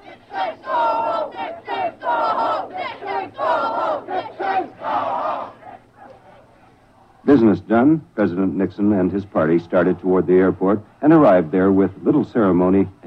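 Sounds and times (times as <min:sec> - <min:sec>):
large crowd of demonstrators chanting in unison: 0:00.0 - 0:06.1
low rumble of massed voices of demonstrators: 0:00.0 - 0:13.0
speech: 0:07.4 - 0:13.0.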